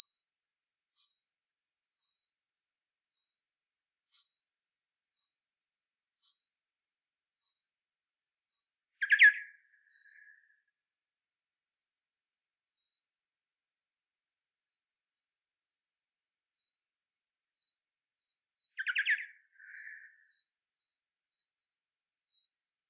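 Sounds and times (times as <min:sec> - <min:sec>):
bats calling with thin high downslurred chirps: 0:09.0 - 0:10.2, 0:18.8 - 0:20.2.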